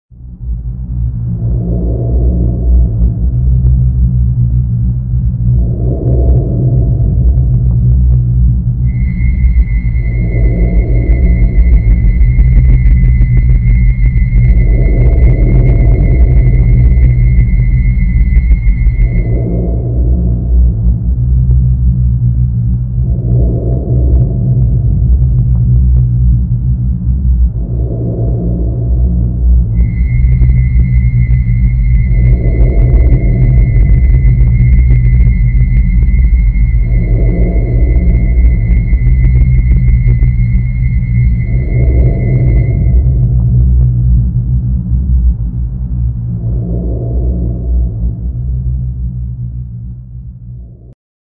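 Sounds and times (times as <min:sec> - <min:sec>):
rumbling whistle: 0:00.2 - 0:51.0.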